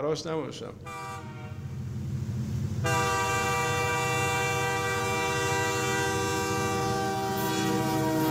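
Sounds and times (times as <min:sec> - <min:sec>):
speech: 0:00.0 - 0:01.1
train rumbling: 0:00.0 - 0:08.2
train horn blaring: 0:00.8 - 0:01.7, 0:02.8 - 0:08.2.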